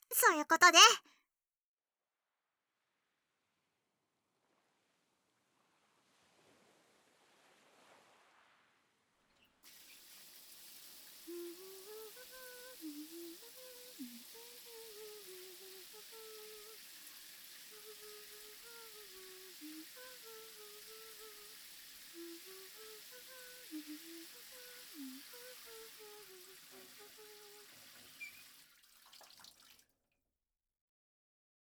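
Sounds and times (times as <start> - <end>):
speech: 0.2 - 1.1
shower running: 9.7 - 29.8.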